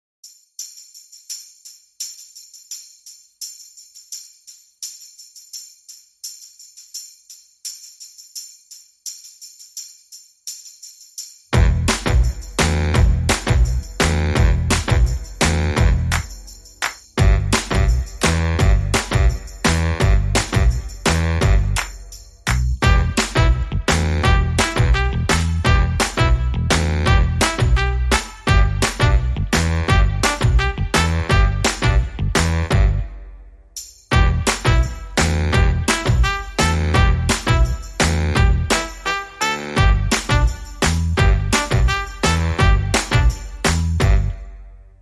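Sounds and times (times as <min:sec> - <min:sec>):
rockabilly jive music without guitars, organ or voices: 0:11.6 - 0:16.3, 0:17.2 - 0:21.9, 0:22.5 - 0:33.0, 0:34.1 - 0:44.3.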